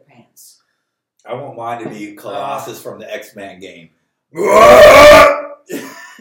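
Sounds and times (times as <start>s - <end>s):
speech: 1.2s - 5.8s
human voice belch-like grunt imitating arcade game character: 4.4s - 5.8s.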